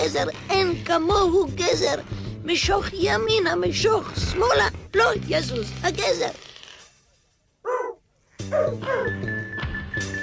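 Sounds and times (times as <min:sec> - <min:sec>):
speech: 0:00.0 - 0:06.6, 0:08.5 - 0:09.4
dog barking: 0:07.6 - 0:09.2.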